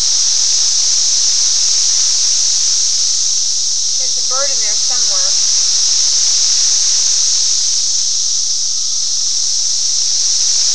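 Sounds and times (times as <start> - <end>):
cicadas in a high-pitched hissing drone: 0.0 - 10.7
speech: 4.3 - 5.7.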